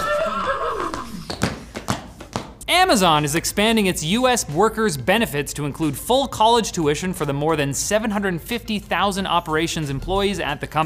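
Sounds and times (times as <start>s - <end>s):
horse whinnying: 0.0s - 1.4s
speech: 2.8s - 10.8s.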